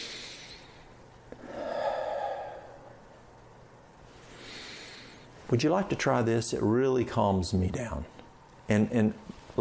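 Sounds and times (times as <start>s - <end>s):
slow soft breath drawn in to inhale lavender oil: 0.0s - 3.0s, 4.0s - 5.3s
speech: 5.5s - 9.6s.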